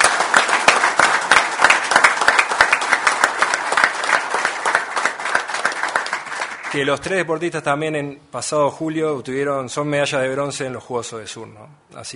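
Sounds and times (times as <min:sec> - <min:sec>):
audience applause: 0:00.0 - 0:06.9
speech: 0:06.8 - 0:12.1.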